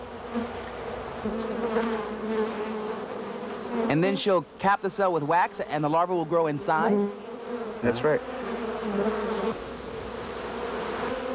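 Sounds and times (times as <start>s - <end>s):
many bees buzzing inside a hive: 0.0s - 11.3s
speech: 1.2s - 2.6s, 3.8s - 9.3s.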